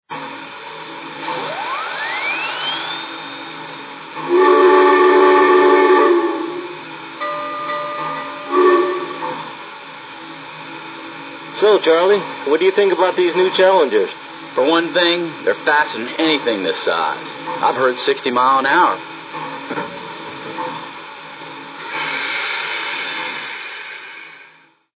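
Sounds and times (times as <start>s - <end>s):
Challenger train: 0.1s - 24.9s.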